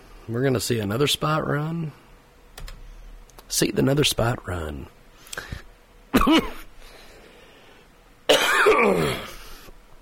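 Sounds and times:
speech: 0.3s - 2.0s, 3.5s - 5.6s, 6.2s - 6.5s
person with a cold coughing: 6.1s - 6.7s, 8.3s - 9.4s
person with a cold clearing throat: 6.2s - 6.7s, 8.3s - 9.4s.

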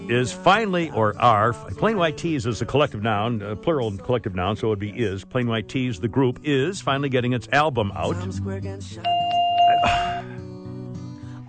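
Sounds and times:
speech: 0.1s - 10.2s
doorbell ding-dong sound effect: 9.0s - 10.2s.

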